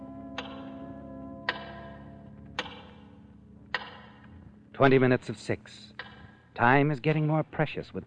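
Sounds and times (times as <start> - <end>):
low steady hum: 0.0 - 8.0
big clock ticking: 0.3 - 5.2, 5.9 - 6.4
speech: 4.8 - 8.0.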